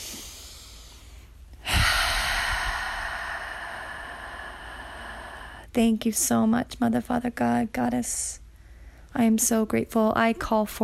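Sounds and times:
deep breath drawn during a spoken self-care affirmation: 0.0 - 5.7, 8.5 - 9.1
speech: 5.8 - 8.4, 9.2 - 10.8.

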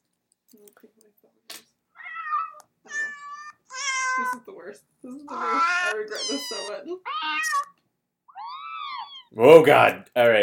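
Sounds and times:
speech: 0.5 - 2.1, 2.8 - 7.7, 9.3 - 10.4
cat meowing played from a soundboard: 2.0 - 4.4, 5.3 - 9.4.

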